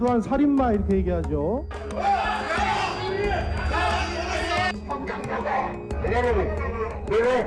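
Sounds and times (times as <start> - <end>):
speech: 0.0 - 2.1, 6.1 - 7.4
audience shouting swearing and protesting from the seats: 1.8 - 4.7.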